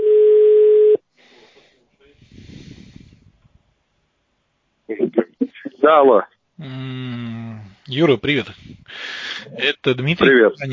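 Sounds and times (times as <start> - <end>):
telephone busy-signal tone beep: 0.0 - 1.0
speech: 5.8 - 7.2, 7.9 - 10.7.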